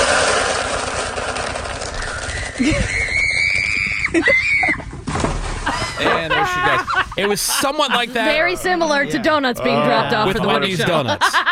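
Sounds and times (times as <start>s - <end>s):
constant rough rumble of noise as a horse charges: 0.0s - 7.2s
speech: 2.6s - 3.0s, 4.1s - 4.5s, 6.0s - 11.5s
woman screaming shrilly as a horse charges: 2.6s - 4.8s
laughter: 5.6s - 11.5s.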